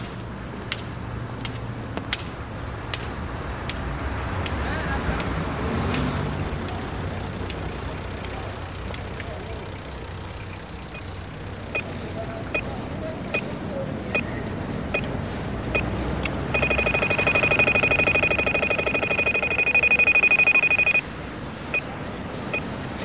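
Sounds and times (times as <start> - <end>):
steady street traffic in Brussels: 0.0 - 23.0
pedestrian crossing signal ticking: 7.2 - 13.5, 14.9 - 21.1, 21.7 - 22.8
audible pedestrian crossing signal in Brussels beeping: 10.4 - 14.3, 14.9 - 15.1, 15.7 - 22.8.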